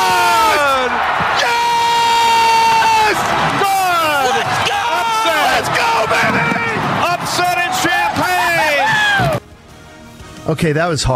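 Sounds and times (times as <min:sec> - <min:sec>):
broadcaster screaming: 0:00.0 - 0:09.4
crowd roaring and cheering at a football game: 0:00.0 - 0:09.4
speech: 0:10.5 - 0:11.1.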